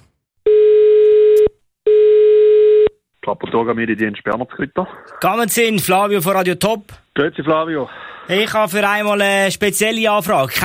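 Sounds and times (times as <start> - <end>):
telephone call tone when phoning the cantonal police: 0.5 - 3.0
speech: 3.3 - 10.6.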